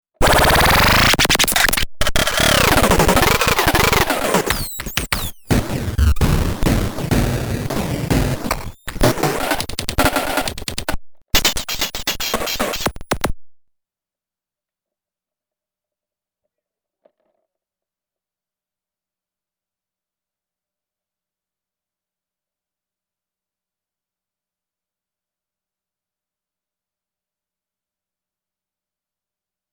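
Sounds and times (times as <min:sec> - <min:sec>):
electronic rap music: 0:00.2 - 0:13.6.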